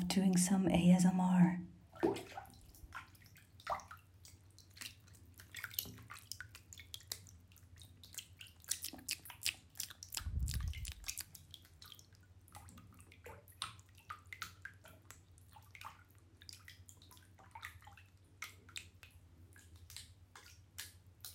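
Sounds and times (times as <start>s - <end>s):
speech: 0.2s - 2.5s
water splashing and dripping in a bath: 1.9s - 21.3s.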